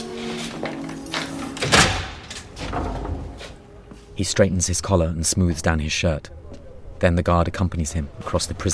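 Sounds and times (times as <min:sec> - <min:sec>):
heavy metal prison cell door unlocked and opened: 0:00.2 - 0:03.7
speech: 0:04.2 - 0:06.4, 0:07.0 - 0:08.7.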